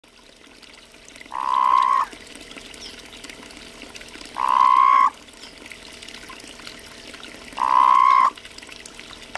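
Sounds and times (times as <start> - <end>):
Sonoran Desert toads calling in the USA: 1.3 - 2.1, 4.4 - 5.2, 7.6 - 8.4.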